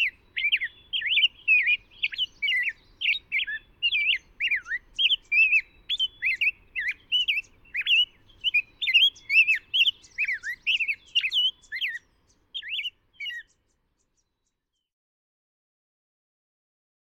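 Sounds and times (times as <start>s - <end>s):
rose-breasted grosbeak singing: 0.0s - 14.9s.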